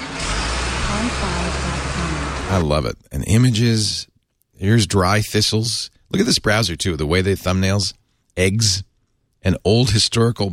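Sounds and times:
road traffic with passing cars: 0.0s - 2.7s
speech: 1.0s - 10.5s.

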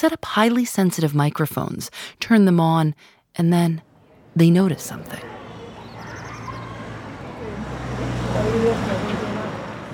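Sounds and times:
speech: 0.0s - 5.4s
engine rumble from nearby road traffic: 3.9s - 9.9s.

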